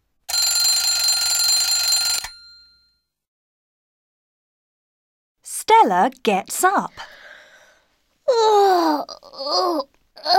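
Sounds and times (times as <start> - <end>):
mechanical alarm clock ringing: 0.3 - 3.0
speech: 5.8 - 7.1, 8.3 - 10.3.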